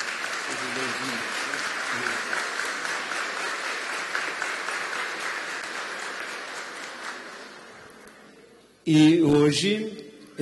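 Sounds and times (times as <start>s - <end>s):
crowd applauding: 0.0s - 8.1s
speech: 0.6s - 2.6s, 8.9s - 10.4s.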